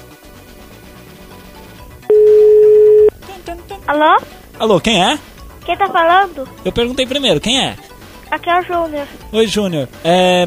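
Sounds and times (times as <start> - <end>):
telephone ringing tone on a call: 2.1 - 3.2
speech: 3.5 - 10.4.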